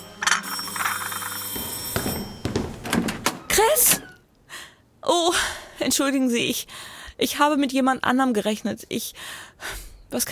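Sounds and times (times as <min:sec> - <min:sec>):
doorbell ringing with a bright buzzy chime: 0:00.0 - 0:03.2
soft knocks or thumps: 0:01.6 - 0:03.5
speech: 0:03.8 - 0:04.0, 0:05.9 - 0:10.2.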